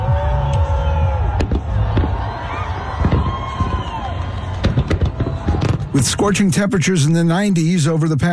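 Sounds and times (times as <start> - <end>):
crowd whistling and cheering: 0.0 - 7.0
fireworks exploding at a 4th of July show in New York: 1.2 - 6.9
speech: 6.0 - 8.3.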